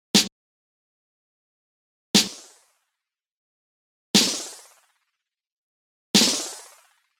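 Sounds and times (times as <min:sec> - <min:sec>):
snare drum with tape delay: 0:02.2 - 0:02.6, 0:04.2 - 0:04.7, 0:06.2 - 0:06.8.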